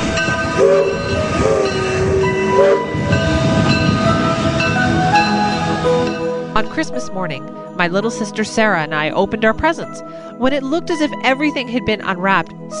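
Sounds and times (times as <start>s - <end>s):
train whistle blasts: 0.0s - 6.5s
moving train rumbling and clattering: 0.0s - 7.8s
speech: 6.8s - 12.7s.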